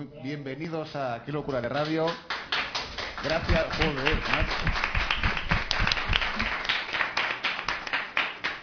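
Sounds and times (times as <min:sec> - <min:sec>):
speech: 0:00.2 - 0:02.4, 0:03.2 - 0:04.9
audience applauding: 0:01.7 - 0:08.6
sharp individual claps: 0:01.7 - 0:08.6.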